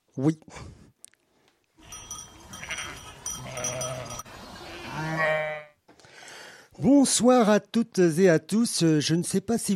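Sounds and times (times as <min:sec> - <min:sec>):
speech: 0:00.2 - 0:00.8, 0:07.0 - 0:09.7
several sheep bleating: 0:01.8 - 0:05.8.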